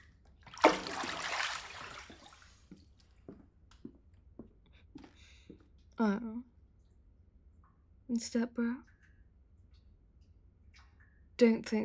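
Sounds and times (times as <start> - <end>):
water dripping and sloshing: 0.0 - 11.8
water splashing as a person rises out of a bath: 0.5 - 2.8
speech: 6.0 - 6.5, 8.1 - 8.9, 11.4 - 11.8.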